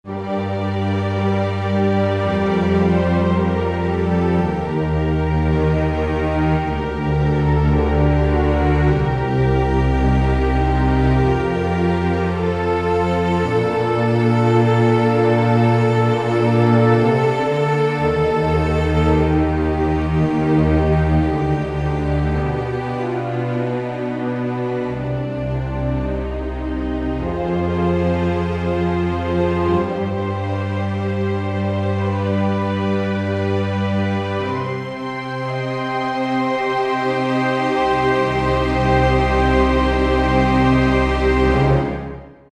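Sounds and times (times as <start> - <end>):
full orchestra on Roland SR-JV80-02 Orchestral expansion board: 0.0 - 42.5.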